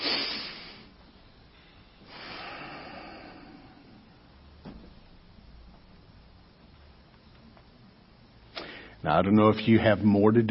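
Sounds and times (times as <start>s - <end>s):
deep breath in and out at an evening church service: 0.0s - 4.4s, 8.6s - 9.0s
speech: 9.0s - 10.4s.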